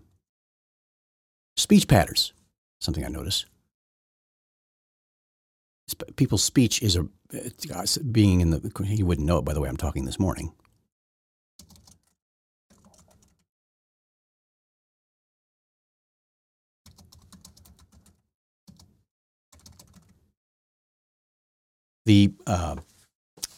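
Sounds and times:
speech: 1.6s - 3.5s, 5.9s - 10.6s, 22.1s - 22.9s
typing on a computer keyboard: 11.6s - 13.4s, 16.9s - 20.2s.

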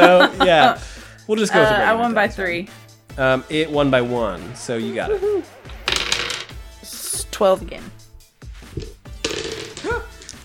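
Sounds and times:
laughter: 0.0s - 0.8s
speech: 0.0s - 5.6s, 7.4s - 8.0s
dice rolled for damage clattering onto a hard floor: 5.8s - 6.5s, 8.8s - 10.4s.

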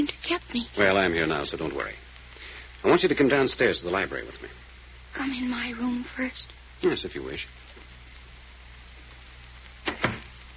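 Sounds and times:
speech: 0.0s - 2.1s, 2.8s - 4.6s, 5.2s - 7.7s
door thud: 9.9s - 10.3s.

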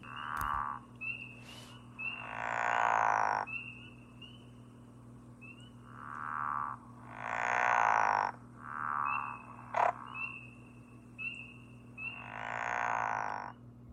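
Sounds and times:
faint steady hum: 0.0s - 13.9s
pickerel frog low snoring mating call: 2.2s - 3.5s, 5.9s - 10.0s, 12.2s - 13.5s.

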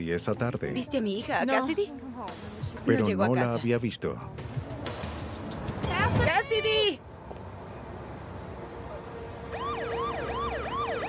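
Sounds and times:
speech: 0.0s - 4.6s, 6.2s - 7.1s
police patrol car siren wailing: 9.4s - 11.0s.

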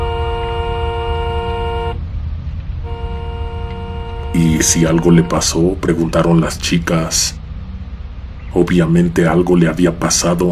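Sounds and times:
car horn honking: 0.0s - 2.0s, 2.8s - 5.8s
low rumbling engine: 0.0s - 10.4s
road noise: 0.0s - 10.4s
speech: 4.4s - 7.4s, 8.5s - 10.4s.

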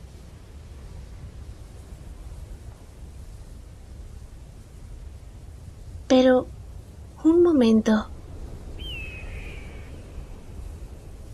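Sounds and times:
steady low rumble of outdoor noise: 0.0s - 11.3s
speech: 6.1s - 6.5s, 7.3s - 8.1s
high piercing eagle-like bird cry: 8.8s - 10.5s.

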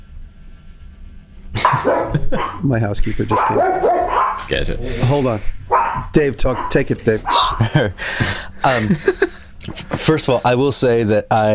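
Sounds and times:
pet dog barking: 1.6s - 2.7s, 3.3s - 4.5s, 5.7s - 7.7s
people laughing: 1.6s - 3.7s, 6.7s - 9.5s
speech: 1.8s - 11.5s.

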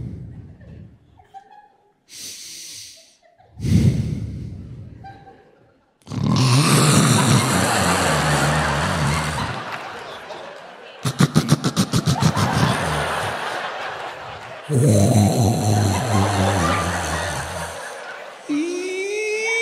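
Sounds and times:
laughter: 0.3s - 2.0s, 3.0s - 3.7s, 4.7s - 19.6s
loud heavy human snoring: 6.1s - 9.9s, 11.1s - 14.0s, 14.7s - 18.1s.

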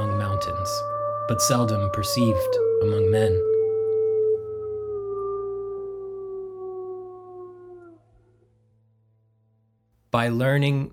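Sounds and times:
wolf howling: 0.0s - 8.5s
speech: 1.3s - 3.5s, 10.1s - 10.9s.

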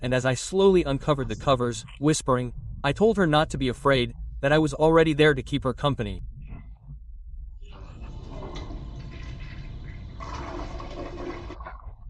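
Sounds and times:
speech: 0.0s - 6.3s
toilet flushing: 7.7s - 12.0s.

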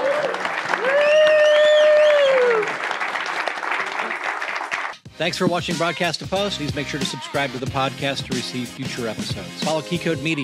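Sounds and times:
audience applause for panelists at an editors' industry event: 0.0s - 5.0s
speech: 5.2s - 10.4s.

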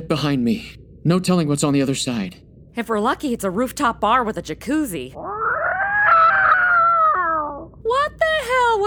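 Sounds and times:
speech: 0.0s - 5.3s
angry cat howling: 5.2s - 7.8s.

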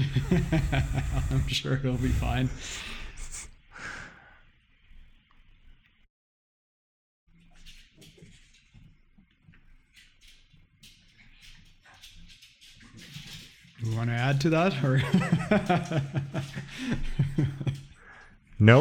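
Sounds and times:
laughter: 0.0s - 2.6s, 14.6s - 18.1s
speech: 0.2s - 3.0s, 13.8s - 17.8s, 18.6s - 18.7s
dogs play-wrestling under a desk: 7.4s - 13.8s.

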